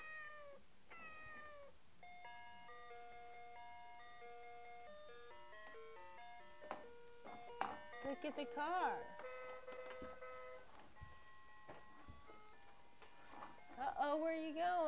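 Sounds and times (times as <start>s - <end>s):
cat meowing: 0.0s - 1.8s
electronic chiming melody of stepped tones: 2.0s - 12.6s
speech: 8.1s - 9.2s, 14.1s - 14.8s.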